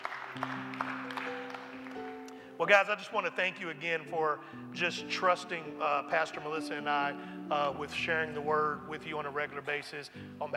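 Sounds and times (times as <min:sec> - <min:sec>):
church audience clapping as praise: 0:00.0 - 0:02.6
speech: 0:00.4 - 0:01.0, 0:02.6 - 0:10.5.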